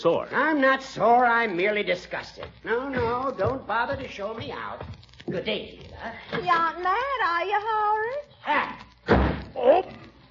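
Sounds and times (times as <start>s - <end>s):
speech: 0.0s - 10.0s
door slamming shut with a heavy bang: 9.1s - 9.6s.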